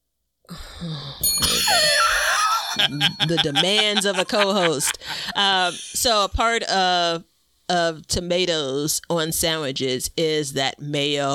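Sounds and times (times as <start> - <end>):
speech: 0.5 - 2.0, 2.8 - 11.3
bright bell ringing: 1.2 - 4.6
laughter: 1.5 - 6.1.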